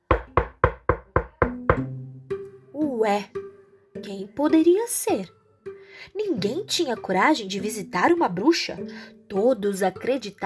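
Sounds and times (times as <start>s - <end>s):
sharp knocks on a door: 0.1s - 2.0s
speech: 3.0s - 3.4s, 4.0s - 5.4s, 6.0s - 10.4s.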